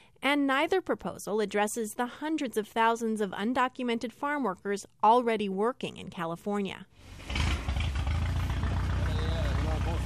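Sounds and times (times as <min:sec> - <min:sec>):
speech: 0:00.3 - 0:07.4
tractor engine running in a nectarine orchard pulling fruit bins: 0:07.0 - 0:10.0.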